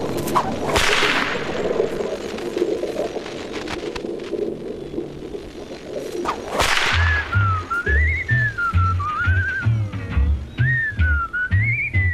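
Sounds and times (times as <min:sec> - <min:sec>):
sharp crack: 0:00.2 - 0:04.4, 0:06.2 - 0:08.7
whistle blown in a wavering, sliding tune: 0:07.0 - 0:09.8, 0:10.6 - 0:12.1
steady rhythmic low thumping beat: 0:07.4 - 0:12.1.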